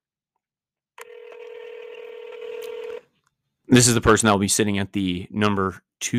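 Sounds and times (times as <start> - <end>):
telephone dialing tone: 1.0 - 3.0
speech: 3.7 - 6.1.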